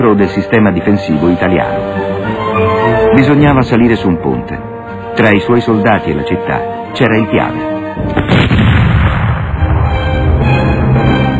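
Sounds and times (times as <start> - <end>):
speech: 0.0 - 2.0, 2.6 - 8.4
loud explosion blowing up a bridge: 8.0 - 10.8.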